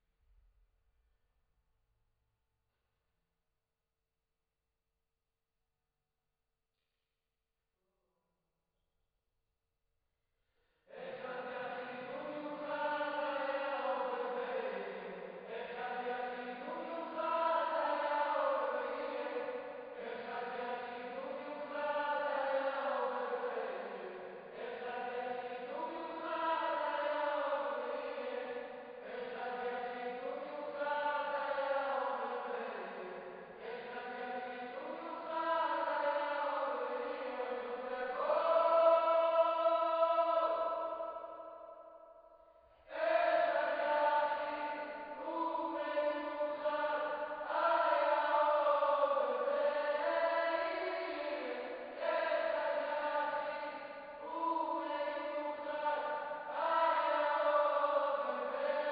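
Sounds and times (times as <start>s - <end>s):
choir singing: 10.9s - 41.5s, 42.9s - 58.9s.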